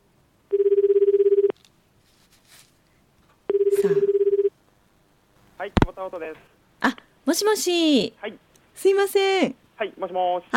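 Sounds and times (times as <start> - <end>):
telephone ringback tone as a call is placed: 0.5 - 1.5, 3.5 - 4.5
faint rustling: 1.5 - 3.4
speech: 6.0 - 6.6, 7.3 - 10.5.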